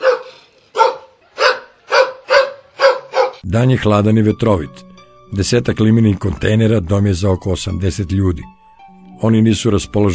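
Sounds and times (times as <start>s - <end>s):
dogs barking at a Roma camp near Bujanovac: 0.0s - 3.4s
speech: 3.4s - 8.6s, 9.2s - 10.1s.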